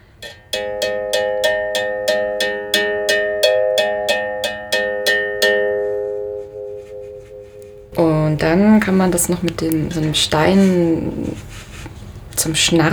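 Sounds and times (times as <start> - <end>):
steel string on a musical bow with gourd resonator struck with bamboo stick: 0.2 - 8.4
speech: 8.8 - 11.7, 12.4 - 12.9.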